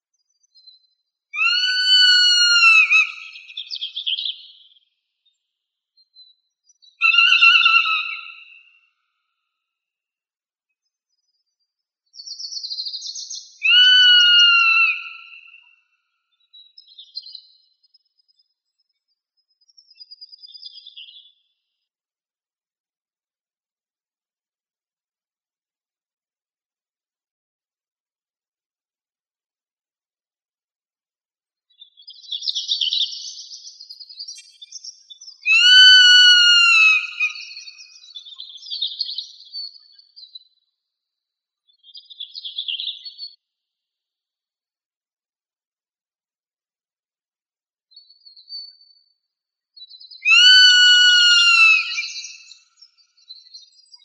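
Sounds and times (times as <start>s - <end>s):
birds of prey calling: 1.4s - 4.4s, 7.0s - 8.8s, 13.1s - 15.8s, 34.4s - 39.3s, 50.1s - 53.8s.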